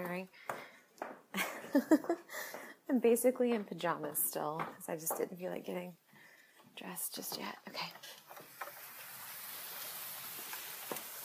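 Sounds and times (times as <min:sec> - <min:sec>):
speech: 0:00.1 - 0:00.5, 0:01.7 - 0:06.0, 0:06.8 - 0:08.2
steady rain on a muddy lawn on a chilly day: 0:08.0 - 0:11.2
sharp drips and splats of rain: 0:08.1 - 0:11.2.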